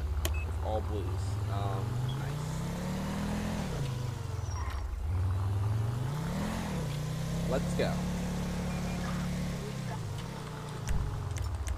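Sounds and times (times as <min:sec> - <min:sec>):
unmarked Taurus patrol car engine revving in a video game: 0:00.0 - 0:11.7
speech: 0:00.8 - 0:02.1, 0:07.5 - 0:08.1.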